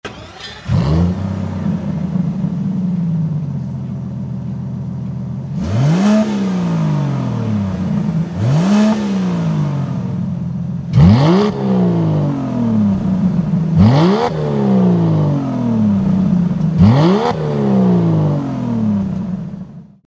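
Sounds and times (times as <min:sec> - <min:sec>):
Vanquish car exhaust with downpipes: 0:00.2 - 0:20.0.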